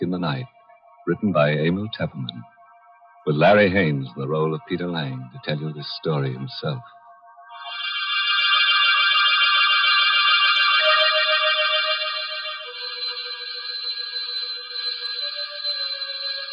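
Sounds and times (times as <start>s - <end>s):
speech: 0.0s - 2.5s, 3.2s - 7.0s
electric doorbell buzzing: 7.6s - 16.5s.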